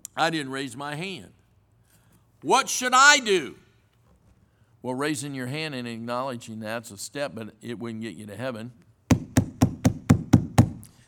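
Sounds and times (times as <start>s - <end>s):
speech: 0.2s - 1.4s, 2.4s - 3.6s, 4.8s - 8.9s
knocking on a door: 9.1s - 10.8s.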